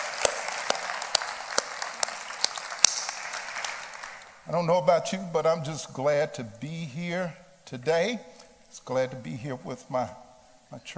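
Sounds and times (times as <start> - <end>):
scattered applause: 0.0 - 4.3
crowd clapping in unison: 0.0 - 4.4
speech: 4.5 - 10.9.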